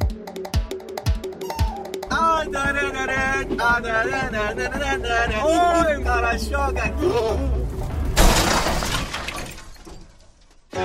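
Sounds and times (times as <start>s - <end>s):
repetitive melodic tune: 0.0s - 7.0s
speech: 2.4s - 7.7s
car crash: 7.5s - 10.7s
headlight glass shattering: 8.0s - 10.7s.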